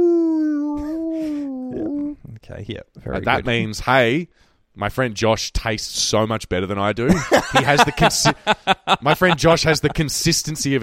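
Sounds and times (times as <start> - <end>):
person voicing a tonal squeal imitating a dolphin call: 0.0 - 2.2
speech: 2.5 - 10.8
laughter: 7.1 - 10.4.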